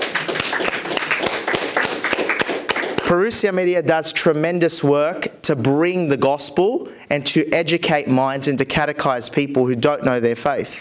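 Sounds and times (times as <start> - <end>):
audience applause at a book launch event: 0.0 - 3.1
speech: 3.1 - 10.7.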